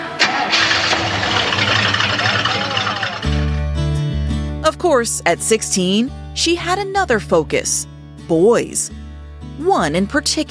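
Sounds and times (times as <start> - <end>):
Chevelle car engine cranking with a grinding starter whir: 0.0 - 3.6
Chevelle car engine idling with a loud steady low rumble: 0.0 - 4.2
speech: 4.8 - 9.0, 9.6 - 10.4.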